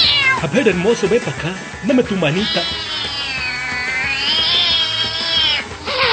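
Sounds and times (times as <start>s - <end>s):
cat stuck up in a tree yowling: 0.0s - 0.4s, 2.3s - 6.1s
speech: 0.4s - 2.9s.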